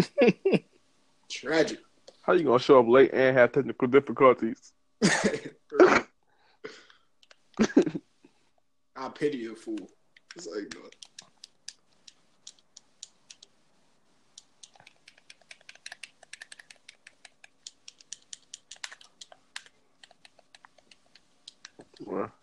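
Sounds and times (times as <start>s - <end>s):
speech: 0.0s - 0.4s, 1.4s - 5.6s, 9.2s - 11.1s
rapid typing on a computer keyboard: 10.2s - 13.5s, 14.4s - 22.0s.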